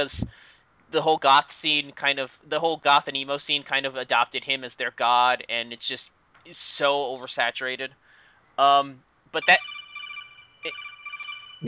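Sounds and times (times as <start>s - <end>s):
speech: 0.0s - 0.3s, 0.9s - 8.0s, 8.6s - 9.8s, 10.6s - 10.8s
telephone ringing with electronic warble: 9.5s - 11.6s.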